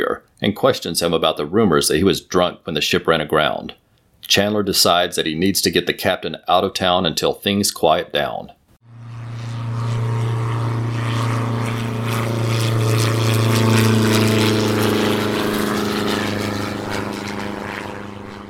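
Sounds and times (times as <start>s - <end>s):
speech: 0.4s - 8.6s
small propeller plane engine droning overhead: 8.8s - 18.4s.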